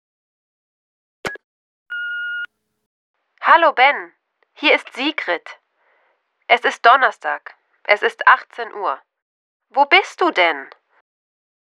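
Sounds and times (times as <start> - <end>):
answering machine beep before a message: 1.3 - 2.5
speech: 3.5 - 5.6, 6.5 - 9.1, 9.7 - 10.8.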